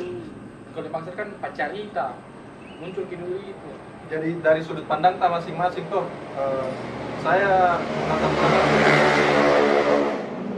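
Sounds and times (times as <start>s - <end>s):
speech: 0.8s - 9.5s
motorcycle passing by: 6.3s - 10.5s.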